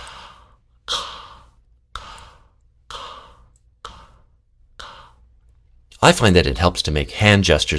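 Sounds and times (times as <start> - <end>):
slow wordless breathing in and out: 0.0 - 5.8
speech: 6.0 - 7.7.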